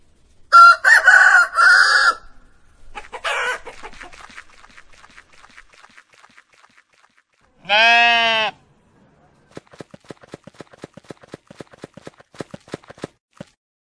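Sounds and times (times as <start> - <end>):
rooster crowing: 0.5 - 2.4, 3.2 - 3.7
bleating call: 7.5 - 8.6.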